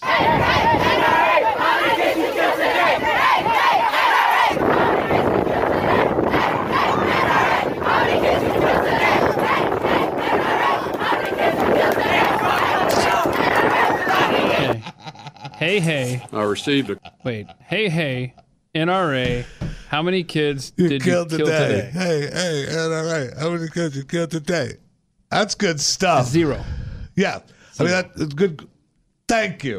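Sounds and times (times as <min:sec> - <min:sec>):
large outdoor protest crowd chanting a slogan in unison: 0:00.0 - 0:14.8
wind buffeting: 0:00.0 - 0:14.8
laughter: 0:00.1 - 0:18.5, 0:20.9 - 0:24.1
speech: 0:15.8 - 0:28.7, 0:29.3 - 0:29.7.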